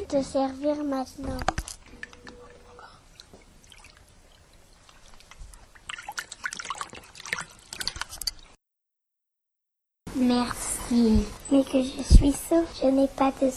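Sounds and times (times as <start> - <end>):
speech: 0.1 - 1.6, 10.2 - 13.5
river water trickling over pebbles: 1.0 - 8.6.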